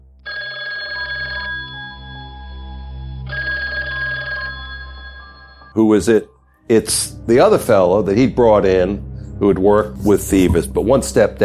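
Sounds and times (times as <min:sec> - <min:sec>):
low music: 0:00.0 - 0:11.4
telephone bell ringing: 0:00.3 - 0:05.8
speech: 0:05.8 - 0:11.4.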